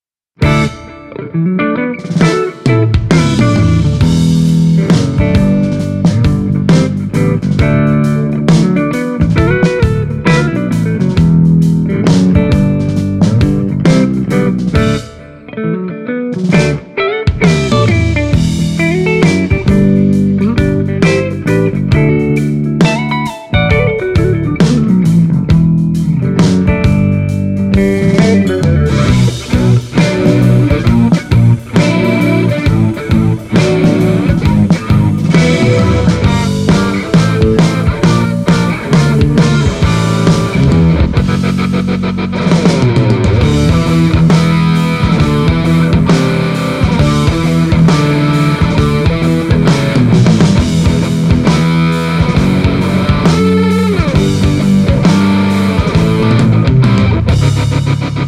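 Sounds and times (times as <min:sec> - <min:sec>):
Les Paul electric guitar through Celestion Greenback G12M speaker: 0:00.0 - 0:58.2.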